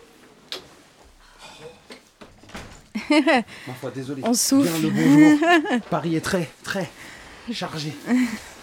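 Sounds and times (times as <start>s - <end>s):
studio door being closed: 2.2s - 3.0s
speech: 3.1s - 8.5s
laughter: 4.8s - 6.0s.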